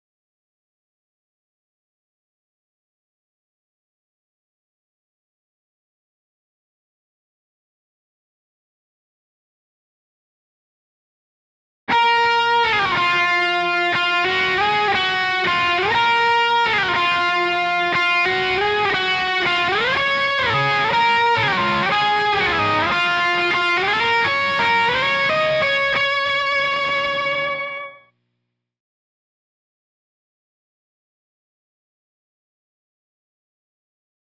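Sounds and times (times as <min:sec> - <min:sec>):
bass guitar: 0:11.9 - 0:28.0.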